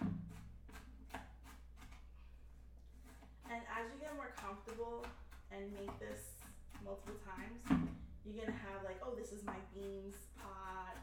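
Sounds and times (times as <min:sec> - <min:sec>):
knife chopping food for a pot of beans: 0:00.0 - 0:02.1, 0:03.0 - 0:11.0
speech: 0:04.1 - 0:11.0.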